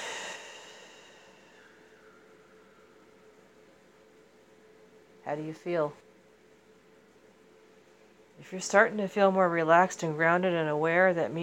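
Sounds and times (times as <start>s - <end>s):
deep exhale during a guided grounding breathing exercise: 0.0s - 3.0s
speech: 5.2s - 6.0s, 8.4s - 11.4s.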